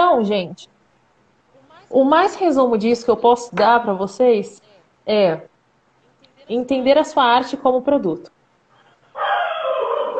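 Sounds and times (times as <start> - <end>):
speech: 0.2 - 0.8, 1.9 - 5.5, 6.5 - 8.3
dog barking loudly in a long drawn-out call on a small rural property: 9.2 - 10.1.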